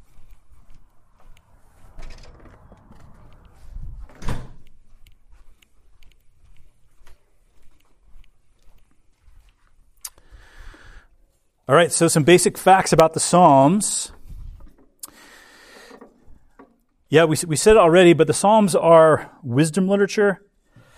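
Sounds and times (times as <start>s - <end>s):
door swinging and shutting with a solid thud: 1.6s - 4.6s
speech: 11.7s - 14.2s, 17.1s - 20.5s.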